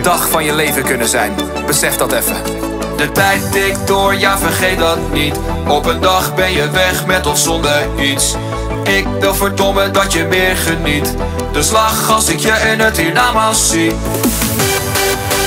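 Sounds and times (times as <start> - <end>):
speech: 0.0 - 14.7
loud upbeat Dutch-language party pop song: 0.0 - 15.4
thumping bass beat: 2.7 - 8.2, 9.0 - 15.4
male vocal singing over full-band music: 2.8 - 14.4.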